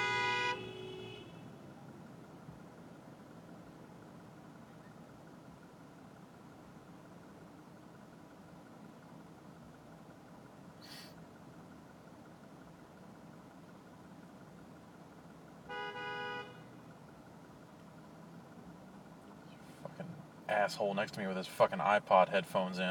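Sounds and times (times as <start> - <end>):
car horn honks at a blocked intersection: 0.0 - 1.6, 15.6 - 16.8
steady rumble of traffic at a blocked intersection: 0.0 - 22.8
speech: 20.5 - 22.8.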